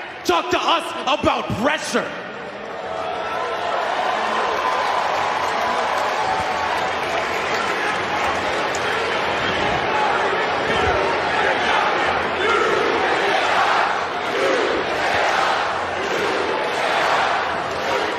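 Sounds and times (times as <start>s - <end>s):
large wrestling arena crowd cheering and shouting: 0.0s - 18.1s
speech: 0.3s - 2.2s
scattered clapping in a wrestling arena crowd: 3.9s - 9.8s, 16.0s - 18.1s.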